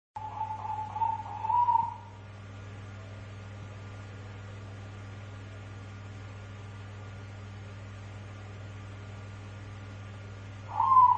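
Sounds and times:
dove cooing: 0.2s - 2.1s, 10.7s - 11.1s.

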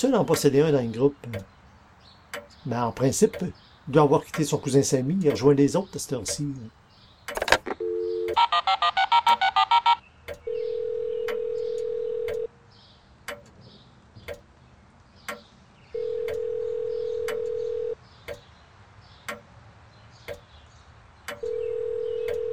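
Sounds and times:
speech: 0.0s - 1.6s, 2.6s - 7.4s, 8.6s - 9.6s
faint regular ticking: 0.0s - 8.4s, 10.2s - 12.5s, 13.2s - 13.6s, 14.2s - 18.5s, 19.2s - 19.6s, 20.2s - 20.5s, 21.2s - 22.5s
cellphone keypad dialing tones: 7.3s - 12.5s, 16.0s - 18.0s, 21.4s - 22.5s.

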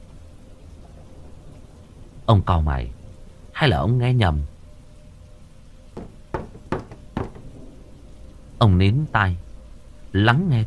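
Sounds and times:
speech: 2.3s - 3.0s, 3.6s - 4.5s, 8.6s - 9.4s, 10.1s - 10.6s
knocking on a wooden door: 6.0s - 7.6s.

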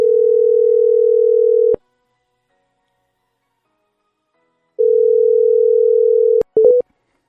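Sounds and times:
telephone ringing tone while dialing a number: 0.0s - 1.8s, 4.8s - 6.8s.

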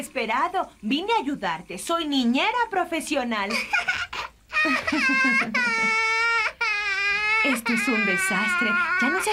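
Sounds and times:
speech: 0.0s - 6.0s, 7.4s - 9.3s
baby crying: 3.7s - 9.3s.

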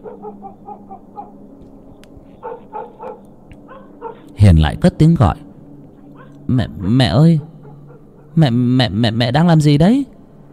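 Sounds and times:
black dog barking loudly: 0.0s - 1.4s, 2.4s - 4.3s, 6.2s - 6.4s, 7.3s - 8.4s
speech: 0.2s - 3.3s, 4.1s - 5.4s, 6.5s - 7.5s, 8.4s - 10.1s.

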